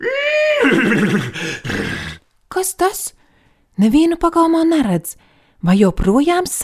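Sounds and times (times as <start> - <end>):
horse whinnying and snorting: 0.0 - 2.1
speech: 0.6 - 1.7, 2.6 - 3.2, 3.8 - 6.6.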